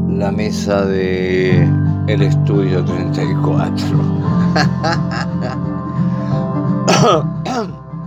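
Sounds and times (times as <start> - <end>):
speech: 0.2 - 6.2, 6.9 - 7.7
laughter: 4.3 - 7.1
raspy coughing: 4.5 - 5.6, 6.9 - 7.8.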